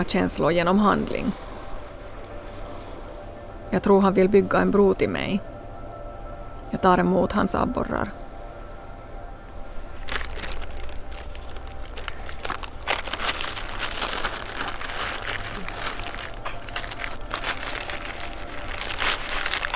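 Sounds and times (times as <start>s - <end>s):
speech: 0.0s - 1.5s, 3.7s - 5.5s, 6.7s - 8.2s
low steady hum: 0.0s - 19.7s
newspaper crinkling while being wrapped around fish: 10.0s - 19.7s.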